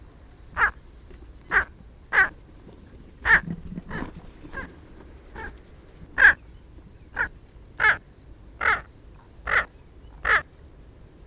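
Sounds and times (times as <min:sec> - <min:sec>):
Squacco heron giving harsh croaking calls: 0:00.6 - 0:00.9, 0:01.5 - 0:02.4, 0:03.2 - 0:06.5, 0:07.1 - 0:10.5.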